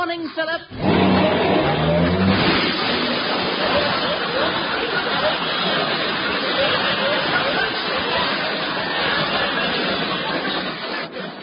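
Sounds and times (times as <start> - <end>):
car engine revving while backing out of a cramped garage: 0.7 - 10.8
laughter: 0.8 - 11.4.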